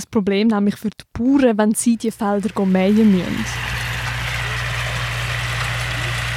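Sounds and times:
speech: 0.0s - 3.7s
large tractor engine idling: 2.0s - 6.3s.

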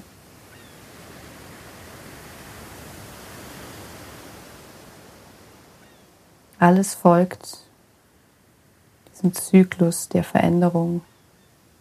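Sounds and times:
sea waves breaking on shore: 0.0s - 9.0s
speech: 6.6s - 7.6s, 9.2s - 11.1s.

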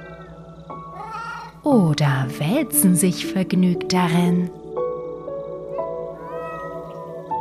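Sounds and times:
cats meowing on a meadow: 0.0s - 1.6s, 5.7s - 7.3s
speech: 1.6s - 4.6s.

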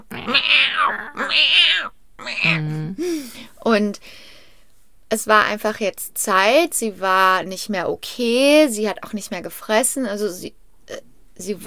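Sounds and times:
human voice imitating an old cat's meow: 0.0s - 3.0s
speech: 0.3s - 1.6s, 3.7s - 4.2s, 5.1s - 11.6s.

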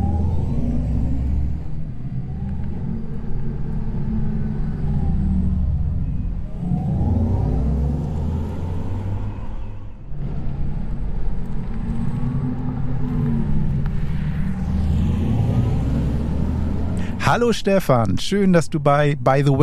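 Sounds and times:
electric sports car's designed driving sound: 0.0s - 19.6s
speech: 17.3s - 19.6s.

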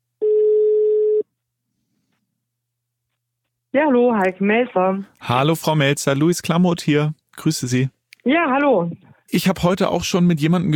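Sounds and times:
ringback tone of an outgoing phone call: 0.2s - 1.2s
speech: 3.8s - 10.7s.

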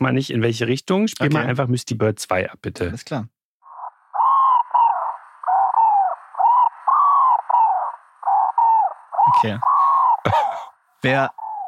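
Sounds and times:
speech: 0.0s - 3.4s, 9.4s - 11.4s
dove cooing: 3.7s - 10.7s, 11.3s - 11.6s.

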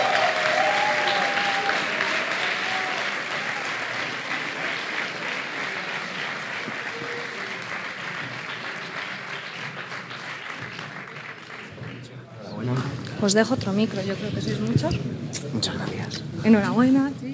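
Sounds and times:
large crowd applauding: 0.0s - 12.3s
speech: 13.2s - 17.3s.

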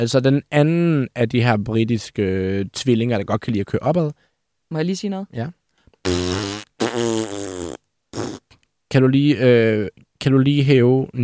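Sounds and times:
speech: 0.0s - 7.5s, 9.0s - 11.2s
mouth fart noises blown into a microphone: 6.0s - 8.6s.

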